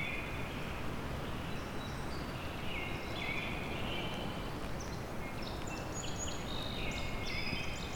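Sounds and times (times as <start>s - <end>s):
American robin singing caroling phrases: 0.0s - 0.6s, 1.2s - 7.9s
other birds chirping faintly: 0.0s - 7.9s.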